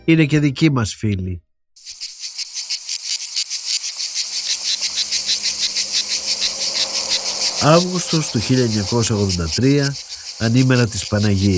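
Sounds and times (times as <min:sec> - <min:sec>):
speech: 0:00.0 - 0:02.0, 0:07.6 - 0:11.5
cicadas buzzing on a hot summer day in an emptied city: 0:01.8 - 0:11.5.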